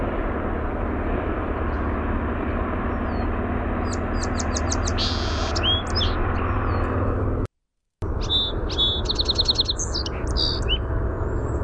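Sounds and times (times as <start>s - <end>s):
low-frequency background rumble: 0.0s - 11.6s
song sparrow singing: 2.9s - 7.1s, 8.0s - 11.6s.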